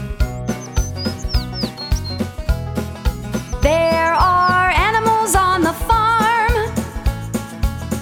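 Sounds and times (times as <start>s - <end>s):
small bird chirping: 0.0s - 4.9s
upbeat music track with steady thumping beat: 0.0s - 8.0s.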